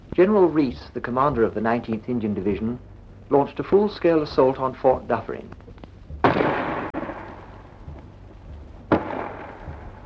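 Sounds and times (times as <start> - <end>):
steady low rumble: 0.0 - 10.0
speech: 0.2 - 5.6
faint thuds: 5.6 - 10.0
5.5 gun artillery blast with rolling echo: 6.2 - 7.3, 8.9 - 10.0.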